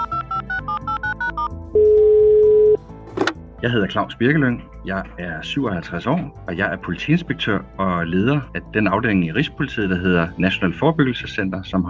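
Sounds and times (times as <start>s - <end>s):
phone dialing beeps: 0.0s - 2.8s
telephone ringing tone: 0.0s - 2.8s
speech: 3.6s - 11.8s.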